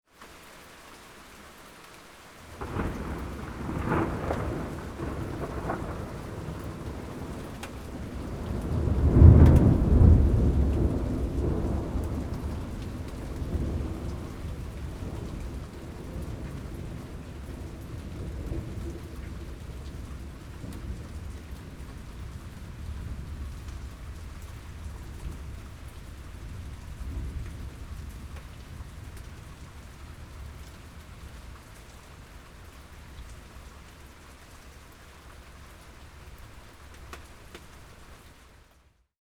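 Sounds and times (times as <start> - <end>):
thunderstorm: 2.5 - 32.3.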